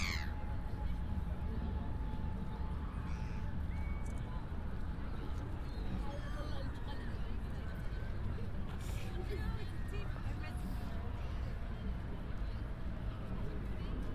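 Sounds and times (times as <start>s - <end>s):
rumble of crowd and traffic in a park: 0.0s - 14.1s.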